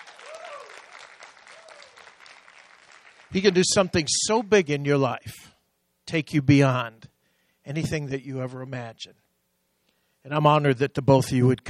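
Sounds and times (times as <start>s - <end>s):
faint voice or cheer: 0.0s - 2.2s
audience clapping: 0.0s - 4.2s
speech: 3.3s - 5.5s, 6.1s - 7.1s, 7.7s - 9.2s, 10.2s - 11.6s.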